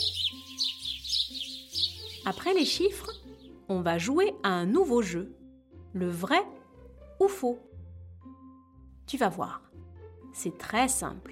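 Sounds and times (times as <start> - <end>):
birds chirping: 0.0 - 3.7
speech: 2.3 - 3.1, 3.7 - 6.6, 7.2 - 7.7, 9.1 - 9.8, 10.4 - 11.2.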